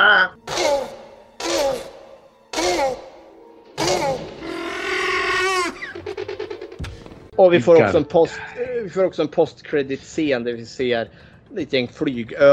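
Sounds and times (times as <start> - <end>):
person imitating a velociraptor call from a dinosaur film: 0.0 - 3.2, 3.8 - 6.0
speech: 7.4 - 12.5.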